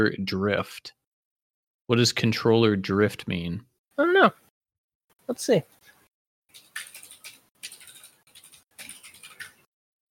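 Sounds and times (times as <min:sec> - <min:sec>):
speech: 0:00.0 - 0:01.0, 0:01.9 - 0:04.4, 0:05.3 - 0:05.8
typing on a Ducky One 2 Mini mechanical keyboard: 0:06.5 - 0:09.7.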